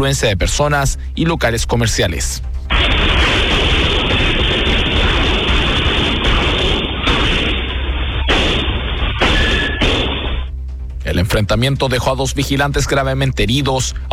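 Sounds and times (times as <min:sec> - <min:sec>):
speech: 0:00.0 - 0:03.3, 0:11.2 - 0:14.1
heavily distorted rapid gunfire during a street shootout: 0:02.7 - 0:10.5.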